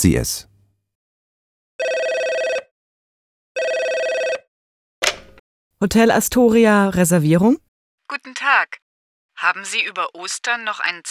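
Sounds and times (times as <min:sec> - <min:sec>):
speech: 0:00.0 - 0:00.5, 0:05.8 - 0:08.8, 0:09.4 - 0:11.1
telephone at a hotel reservation desk ringing with an electronic trill: 0:01.8 - 0:02.6, 0:03.6 - 0:04.4, 0:05.0 - 0:05.4.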